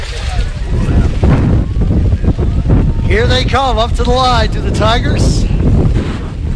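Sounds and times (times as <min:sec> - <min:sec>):
strong wind buffeting the microphone at a cold rainy outdoor football game: 0:00.0 - 0:06.5
speech: 0:03.1 - 0:05.6.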